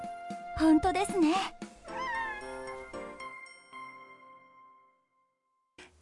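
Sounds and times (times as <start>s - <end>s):
speech: 0.6s - 1.6s
cat meowing: 1.9s - 2.9s.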